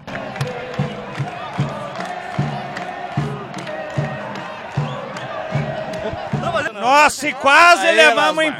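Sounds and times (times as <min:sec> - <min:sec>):
steady rhythmic thumps like drums or stomping: 0:00.0 - 0:06.8
large stadium football crowd roaring and chanting after a goal: 0:00.0 - 0:08.5
speech: 0:06.8 - 0:08.5.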